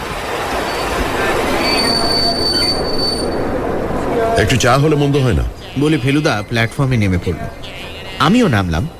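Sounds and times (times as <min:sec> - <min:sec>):
steady rumble of train carriages: 0:00.0 - 0:08.9
train wheels squealing as a train slows into a station: 0:00.7 - 0:03.5
speech: 0:04.4 - 0:08.9.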